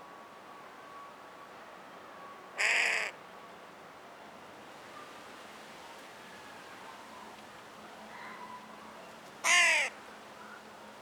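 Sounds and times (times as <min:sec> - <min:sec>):
low background noise: 0:00.0 - 0:11.0
carrion crow Corvus corone cawing: 0:02.6 - 0:03.2, 0:09.4 - 0:10.0.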